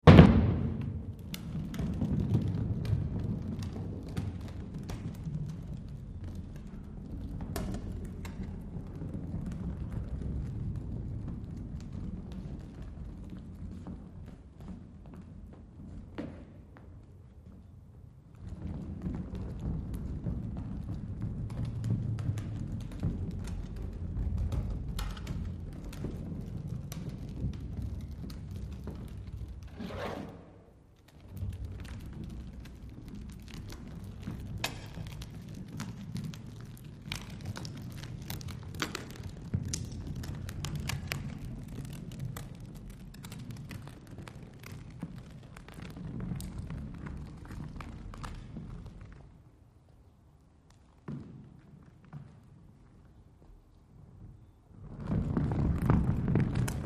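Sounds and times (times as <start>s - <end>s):
heavy ball rolling: 0.0s - 49.5s, 54.1s - 56.8s.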